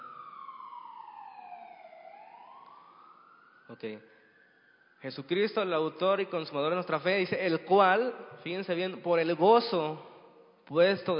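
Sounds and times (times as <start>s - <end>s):
ambulance siren wailing while passing by: 0.0s - 8.5s
speech: 3.7s - 4.2s, 5.0s - 10.1s, 10.7s - 11.1s.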